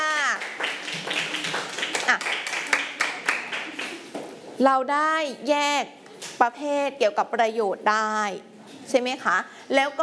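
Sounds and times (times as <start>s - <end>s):
class of students clapping hands: 0.2s - 4.1s
speech: 4.6s - 10.0s.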